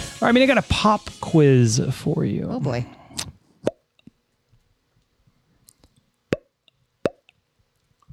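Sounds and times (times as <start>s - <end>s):
speech: 0.2s - 3.3s
mouth clicks and smacks: 3.1s - 4.2s, 5.7s - 8.1s
vocal imitation of a pop: 7.1s - 7.3s.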